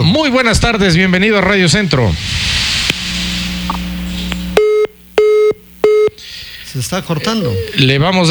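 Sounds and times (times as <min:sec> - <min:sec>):
faint telephone line noise: 0:00.0 - 0:08.2
speech: 0:00.2 - 0:02.4, 0:06.8 - 0:08.2
low hum: 0:00.3 - 0:07.9
telephone ringing on the line during a radio broadcast: 0:03.7 - 0:07.9.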